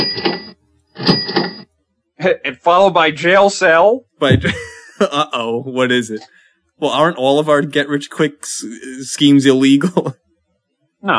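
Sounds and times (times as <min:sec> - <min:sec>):
speech: 0:00.0 - 0:01.1, 0:02.2 - 0:10.2
cash register ringing: 0:00.0 - 0:01.6
laughter: 0:04.2 - 0:06.2, 0:06.8 - 0:10.1.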